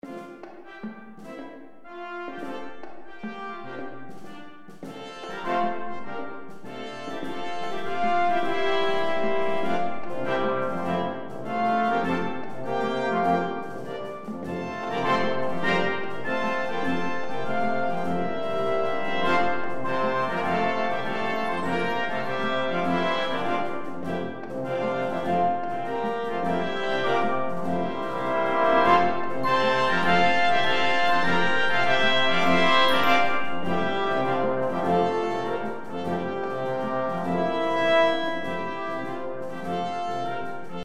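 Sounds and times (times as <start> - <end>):
brass band playing: 0.0 - 40.8.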